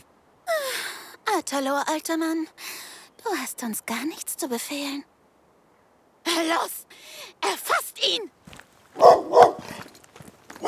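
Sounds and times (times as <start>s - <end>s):
speech: 1.3s - 5.1s, 6.3s - 8.4s
mangy dog barking and yelping: 9.0s - 9.9s.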